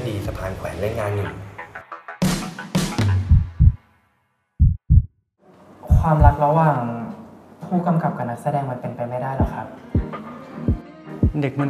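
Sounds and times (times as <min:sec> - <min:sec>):
speech: 0:00.2 - 0:01.5, 0:06.0 - 0:07.1, 0:07.7 - 0:10.0, 0:10.6 - 0:11.6
pounding heartbeat in low heavy double beats: 0:03.2 - 0:03.8, 0:04.6 - 0:05.2, 0:05.9 - 0:06.4, 0:09.4 - 0:10.1, 0:10.7 - 0:11.4.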